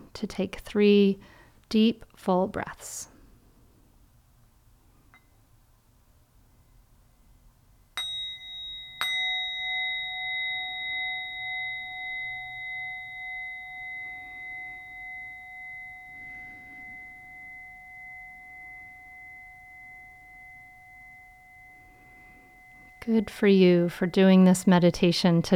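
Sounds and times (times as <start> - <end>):
speech: 0.2 - 3.1, 23.1 - 25.5
meditation bell struck and ringing: 8.0 - 25.5.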